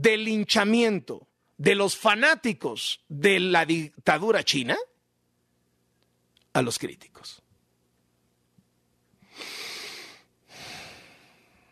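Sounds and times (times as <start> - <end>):
speech: 0.0 - 4.9, 6.6 - 7.4
deep breath: 9.2 - 11.7.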